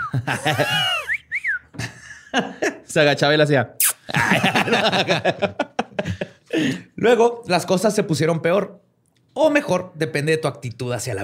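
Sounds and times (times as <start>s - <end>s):
breathy laughter: 0.0s - 1.2s, 4.1s - 6.8s
speech: 0.1s - 1.0s, 2.3s - 8.8s, 9.4s - 11.2s
person whistling chirps imitating a mongoose call: 0.8s - 1.7s.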